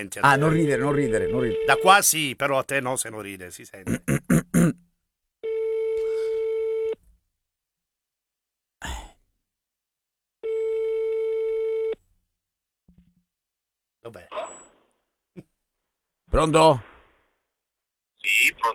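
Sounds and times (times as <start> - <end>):
speech: 0.0 - 4.8, 16.4 - 16.9, 18.2 - 18.7
telephone ringback tone while placing a call: 0.3 - 1.9, 5.4 - 7.0, 10.4 - 12.0.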